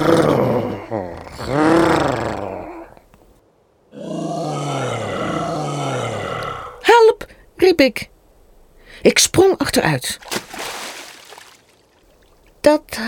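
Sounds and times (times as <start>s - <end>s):
snow monster growling and roaring: 0.0s - 3.0s, 3.9s - 6.8s
speech: 7.8s - 8.1s, 9.0s - 10.3s, 12.6s - 13.0s.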